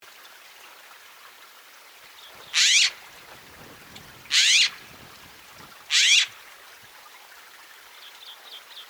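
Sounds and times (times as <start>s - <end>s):
Woodhouse's scrub jay Aphelocoma woodhouseii calling: 2.3s - 6.5s.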